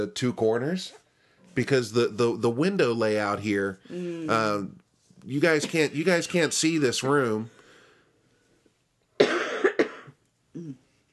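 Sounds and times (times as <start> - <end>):
speech: 0.0 - 1.0, 1.6 - 7.6
harsh coughing: 5.5 - 6.0, 9.2 - 10.2.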